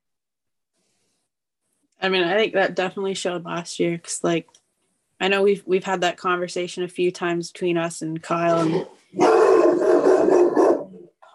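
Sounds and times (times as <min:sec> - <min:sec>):
speech: 0:02.0 - 0:04.6, 0:05.2 - 0:09.4
dog barking loudly: 0:09.2 - 0:11.0.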